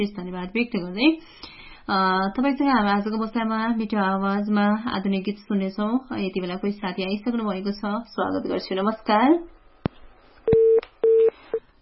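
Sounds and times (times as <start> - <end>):
speech: 0.0 - 9.6
telephone line tone from a call that fails to connect: 10.5 - 11.4.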